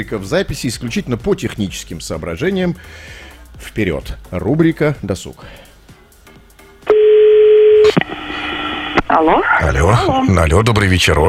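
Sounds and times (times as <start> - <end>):
speech: 0.0 - 5.6, 9.1 - 11.2
telephone dialing tone: 6.9 - 8.5
continuous telephone line tone: 6.9 - 9.0.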